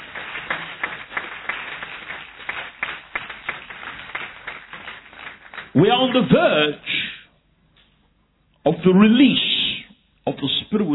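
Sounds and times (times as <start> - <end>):
crowd clapping: 0.0 - 6.4
speech: 5.8 - 7.0, 8.7 - 9.5, 10.3 - 10.9.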